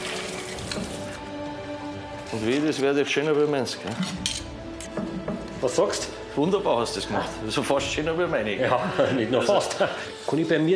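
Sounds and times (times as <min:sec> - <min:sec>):
water running from a tap over a knife: 0:00.0 - 0:01.2
speech: 0:02.3 - 0:04.6, 0:05.6 - 0:10.7
laughter: 0:08.4 - 0:10.2.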